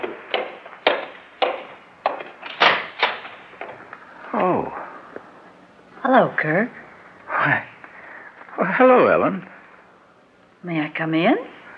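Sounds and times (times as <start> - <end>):
sharp knocks on a wooden door: 0.0 - 2.3
speech: 6.1 - 6.8, 7.4 - 7.7, 8.6 - 9.5, 10.6 - 11.5.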